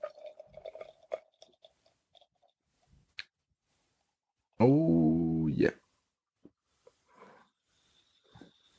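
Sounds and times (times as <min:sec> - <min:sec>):
drink pouring from a can: 0:00.0 - 0:02.4
speech: 0:04.6 - 0:05.8.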